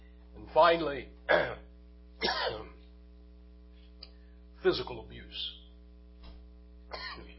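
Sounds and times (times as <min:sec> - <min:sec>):
speech: 0:00.5 - 0:01.6, 0:04.6 - 0:05.6
rasping throat clearing from a tickle in the throat: 0:02.2 - 0:02.8, 0:06.9 - 0:07.3.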